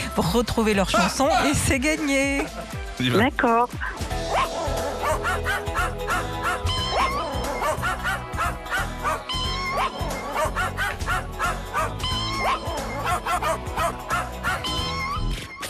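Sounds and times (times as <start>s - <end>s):
speech: 0.2s - 4.1s
dog barking and yipping: 3.8s - 15.2s.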